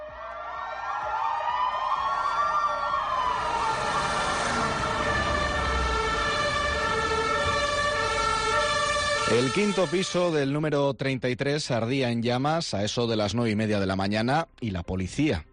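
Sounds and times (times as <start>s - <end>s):
ambulance, police and fire vehicle sirens racing through central Santander, Spain: 0.0s - 10.6s
steady rumble of city traffic in central Santander, Spain: 0.4s - 10.3s
speech: 9.4s - 15.5s.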